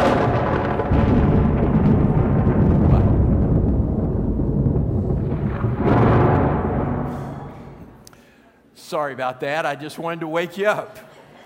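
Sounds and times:
loud thunderclap rolling into a long deep rumble: 0:00.0 - 0:08.0
speech: 0:08.9 - 0:11.1.

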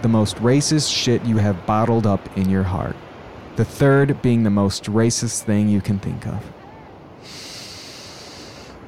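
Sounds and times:
speech: 0:00.0 - 0:06.6
deep breath exhaled: 0:07.2 - 0:08.8.

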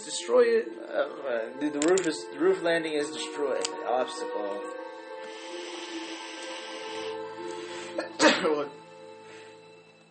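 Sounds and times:
speech: 0:00.1 - 0:04.8
person sneezing: 0:07.7 - 0:08.7.

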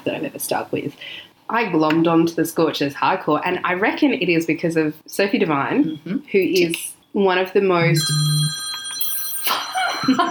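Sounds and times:
speech: 0:00.0 - 0:08.6, 0:09.4 - 0:10.2
mobile phone ringing: 0:07.8 - 0:10.2.

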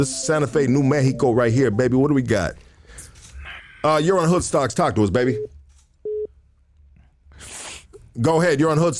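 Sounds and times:
speech: 0:00.0 - 0:02.7, 0:03.8 - 0:05.5, 0:08.2 - 0:08.9
short loud busy-signal telephone beep: 0:05.4 - 0:06.3.

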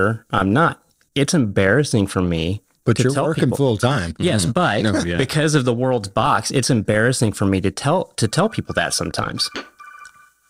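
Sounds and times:
speech: 0:00.0 - 0:09.7
electronic phone ringtone chirping: 0:08.4 - 0:10.4.

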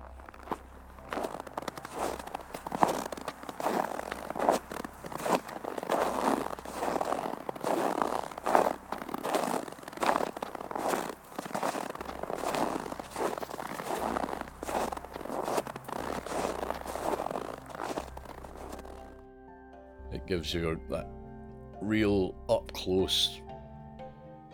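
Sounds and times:
bag of cornstarch squeezed to imitate footsteps crunching through fresh snow: 0:00.0 - 0:19.2
speech: 0:20.3 - 0:21.2, 0:21.8 - 0:23.4.

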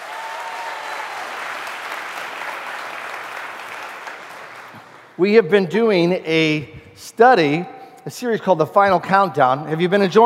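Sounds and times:
audience clapping hands in sustained applause: 0:00.0 - 0:05.2
speech: 0:05.2 - 0:10.2.

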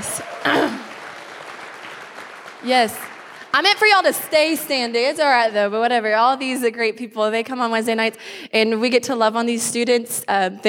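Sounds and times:
audience applause: 0:00.0 - 0:05.3
speech: 0:02.6 - 0:10.6.

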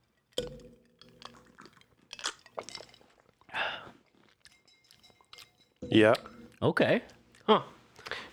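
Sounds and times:
sipping and slurping eggnog from drinking glasses: 0:00.0 - 0:08.3
glass clink: 0:00.4 - 0:07.5
speech: 0:05.8 - 0:08.3.

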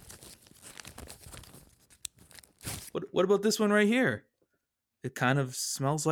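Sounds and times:
paper letters rustling in a mailbag: 0:00.0 - 0:03.0
speech: 0:03.0 - 0:04.3, 0:05.0 - 0:06.1.

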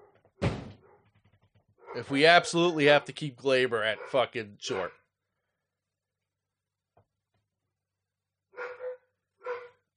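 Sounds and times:
dogs barking: 0:00.0 - 0:01.2, 0:01.8 - 0:02.3, 0:03.8 - 0:05.1, 0:08.5 - 0:09.9
speech: 0:02.0 - 0:05.0.

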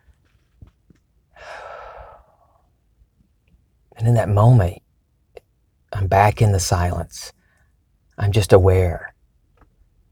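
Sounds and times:
deep breath in: 0:01.4 - 0:02.6
speech: 0:04.0 - 0:04.8, 0:06.0 - 0:07.4, 0:08.2 - 0:09.1.

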